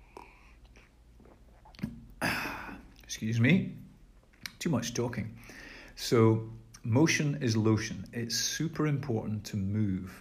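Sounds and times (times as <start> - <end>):
person swallowing a drink: 0.0 - 3.1
speech: 3.1 - 3.8, 4.6 - 10.1.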